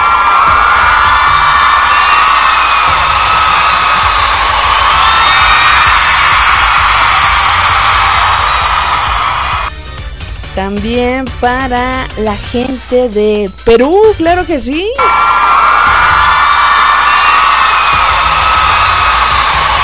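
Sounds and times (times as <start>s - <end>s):
crowd cheering and whooping in an ovation: 0.0s - 9.7s, 15.0s - 19.8s
speech: 10.6s - 15.5s.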